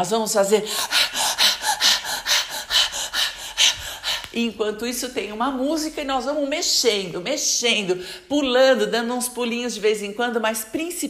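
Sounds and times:
speech: 0:00.0 - 0:01.2, 0:04.4 - 0:11.0
rapid forceful huffing breaths during a chaotic breathing exercise: 0:00.5 - 0:04.5.

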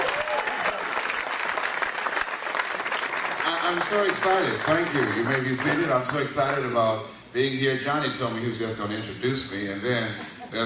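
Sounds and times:
large crowd applauding: 0:00.0 - 0:06.3
speech: 0:03.7 - 0:10.6.

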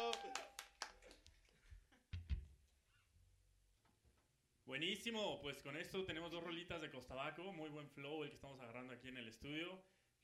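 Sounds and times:
people clapping in a studio: 0:00.0 - 0:01.6
speech: 0:04.7 - 0:10.2.

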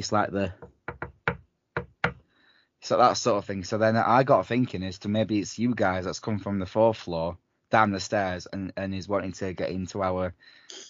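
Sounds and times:
speech: 0:00.0 - 0:00.6, 0:02.8 - 0:10.8
rhythmic knocking on a wooden hotel room door: 0:00.6 - 0:02.2.

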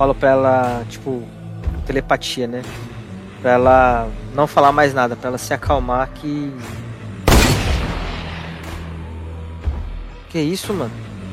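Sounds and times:
speech: 0:00.0 - 0:06.8, 0:10.3 - 0:11.1
gunshot from a hidden hunter with rolling echo: 0:07.3 - 0:08.8.

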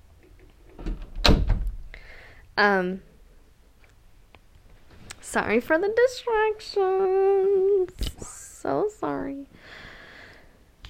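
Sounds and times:
door pushed shut with scraping and a dull thud: 0:00.7 - 0:01.9
speech: 0:02.6 - 0:03.1, 0:05.3 - 0:09.5.

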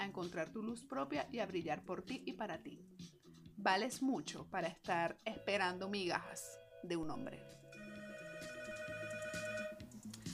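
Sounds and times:
speech: 0:00.0 - 0:07.6
incoming-call ringtone on a telephone: 0:07.4 - 0:09.9.

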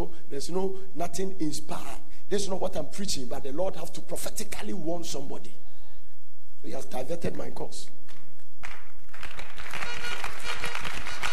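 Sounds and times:
speech: 0:00.3 - 0:05.7, 0:06.6 - 0:08.0
large group clapping together: 0:08.1 - 0:11.3.

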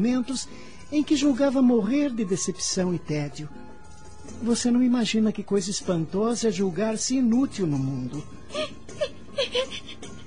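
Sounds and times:
speech: 0:00.0 - 0:03.7, 0:04.3 - 0:09.9
woman crying and sobbing: 0:08.4 - 0:10.2.

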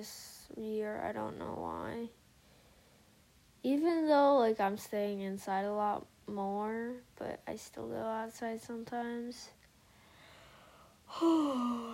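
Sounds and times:
speech: 0:00.0 - 0:02.2, 0:03.6 - 0:09.6, 0:11.1 - 0:11.9
person yawning: 0:11.1 - 0:11.9.

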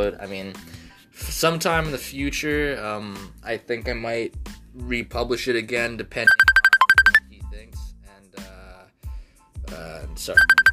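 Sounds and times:
speech: 0:00.0 - 0:06.5, 0:09.7 - 0:10.6
electronic phone ringtone from an incoming call: 0:06.3 - 0:07.2, 0:10.4 - 0:10.7.

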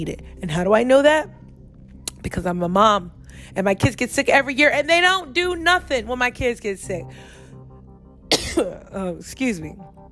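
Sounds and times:
speech: 0:00.0 - 0:01.4, 0:02.2 - 0:07.4, 0:08.6 - 0:10.1
person clearing throat with a rough voiced rasp: 0:08.3 - 0:08.8
person coughing: 0:08.3 - 0:08.9.

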